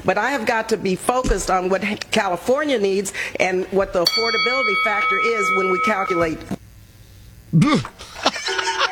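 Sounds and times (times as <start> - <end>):
speech: 0.0 - 6.6, 7.5 - 8.8
bell ringing with sustained metallic tone: 4.1 - 6.5.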